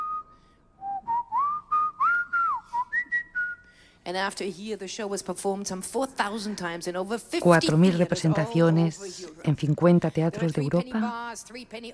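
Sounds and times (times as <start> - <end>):
person whistling an opera melody: 0.0 - 3.6
speech: 4.0 - 11.9.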